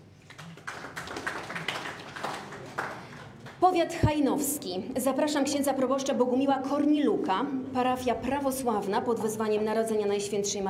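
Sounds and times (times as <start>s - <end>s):
crowd applauding at a ceremony in Siemiatycze County Poland: 0.1s - 3.6s
speech: 3.6s - 10.6s.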